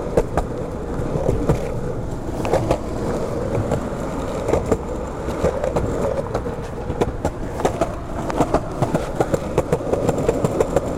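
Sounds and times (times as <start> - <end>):
skateboard wheels rolling over pavement at night: 0.0 - 10.9.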